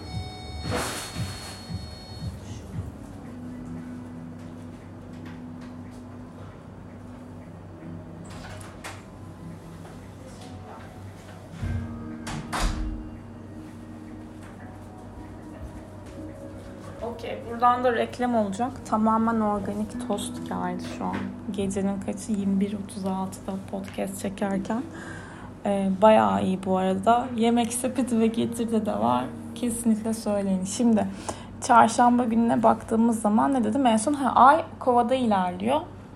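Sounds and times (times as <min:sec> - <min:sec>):
door opening and closing: 0:08.2 - 0:09.1, 0:11.6 - 0:13.1
speech: 0:17.2 - 0:35.9.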